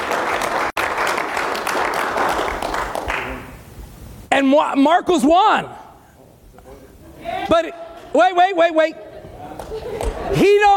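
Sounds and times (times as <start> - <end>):
crowd applauding: 0.0 - 3.6
speech: 4.4 - 5.8, 7.2 - 9.0, 9.7 - 10.7
laughter: 8.7 - 10.7.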